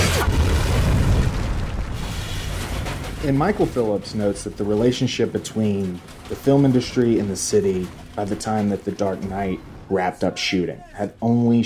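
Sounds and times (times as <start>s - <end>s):
bazooka blast explosion in a film: 0.0s - 4.7s, 6.2s - 10.5s
speech: 3.2s - 11.6s.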